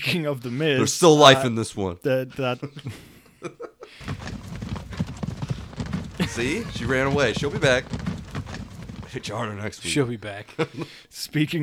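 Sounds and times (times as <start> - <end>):
speech: 0.1 - 4.1, 6.3 - 8.0, 9.2 - 11.6
laughter: 2.4 - 11.0
horse hooves clip-clopping sound effect: 4.0 - 10.0.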